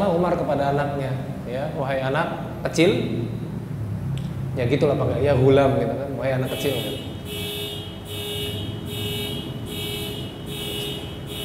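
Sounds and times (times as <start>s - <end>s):
speech: 0.2s - 3.4s, 4.6s - 7.4s
car alarm blaring outside: 6.4s - 11.4s.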